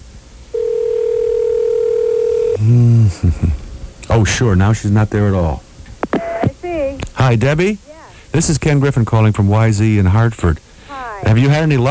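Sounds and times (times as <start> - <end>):
telephone dial tone during an on-air radio phone call: 0.6 - 2.6, 6.0 - 6.6
speech: 3.2 - 3.6, 4.2 - 5.7, 7.2 - 10.6, 11.2 - 11.8.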